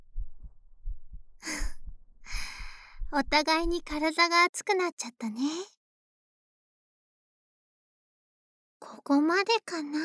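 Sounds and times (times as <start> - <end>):
heartbeat: 0.0 - 4.0
speech: 3.2 - 5.8, 9.0 - 10.0.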